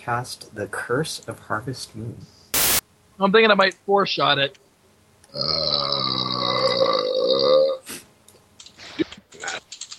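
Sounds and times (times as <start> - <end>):
speech: 0.0 - 2.4, 3.2 - 4.6, 5.3 - 6.3
loud belch: 5.3 - 7.8.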